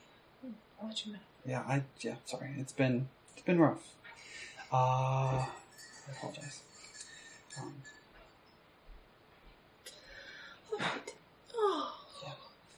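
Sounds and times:
speech: 0.4 - 6.7, 7.6 - 8.0
soft murmured vocal sounds: 3.8 - 8.0, 9.9 - 12.7
person yawning: 4.6 - 5.6.

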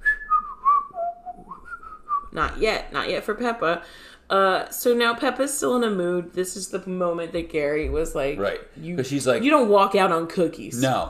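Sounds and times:
person whistling a short wavering tune: 0.0 - 2.3
speech: 2.3 - 11.0.

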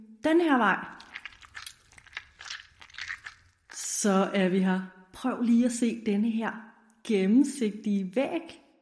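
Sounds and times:
speech: 0.2 - 1.0, 4.0 - 8.6
footsteps walking slowly across sticky ground: 0.9 - 4.0.

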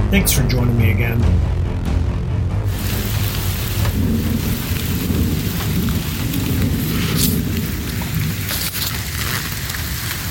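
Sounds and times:
speech: 0.2 - 1.6
low rolling rumbles of distant thunder: 2.7 - 10.1
light rain pattering: 2.7 - 10.2.

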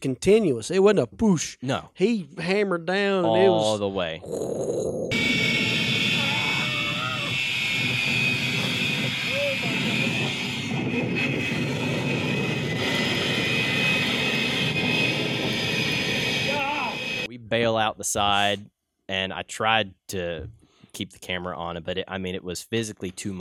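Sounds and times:
speech: 0.0 - 5.7, 17.3 - 23.3
indistinct voices: 3.2 - 5.2, 6.2 - 7.4, 16.5 - 21.4
jet engine on a jet-powered truck roaring: 5.1 - 17.3
piercing high whine of a jet engine: 5.1 - 18.6.

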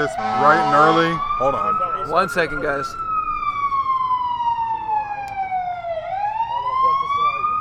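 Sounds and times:
speech: 0.0 - 3.1
faint murmuring voices: 0.0 - 7.5
fire truck siren wailing: 0.0 - 7.5.

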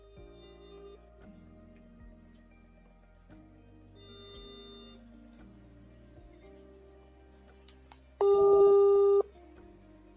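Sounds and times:
phone call ringback tone while connecting: 4.0 - 5.0, 8.2 - 9.3.

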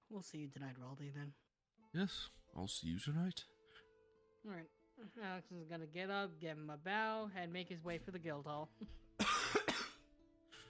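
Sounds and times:
speech: 0.1 - 3.6, 4.4 - 9.0
harsh coughs: 9.2 - 10.6.

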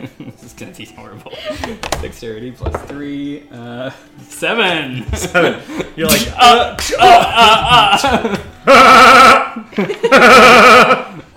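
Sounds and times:
laughter: 0.0 - 2.0, 4.8 - 11.3
speech: 0.0 - 11.1
human voice imitating a billy goat's bleating laugh: 8.7 - 9.6.

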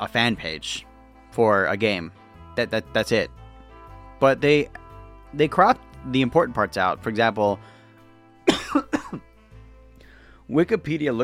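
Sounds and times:
speech: 0.0 - 3.4, 4.2 - 7.8, 8.7 - 9.2, 10.5 - 11.2
harsh throaty coughs: 8.4 - 9.5
softer trailing breath: 10.0 - 10.5.

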